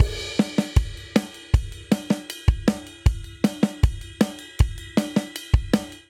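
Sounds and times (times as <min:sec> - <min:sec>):
drum loop at 157 bpm in 4 4: 0:00.0 - 0:06.0.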